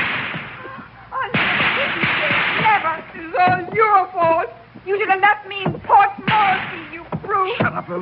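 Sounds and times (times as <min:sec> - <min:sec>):
gunshots: 0:00.0 - 0:00.7, 0:01.3 - 0:03.7, 0:06.3 - 0:07.0
busy noisy background: 0:00.0 - 0:08.0
speech: 0:04.2 - 0:08.0.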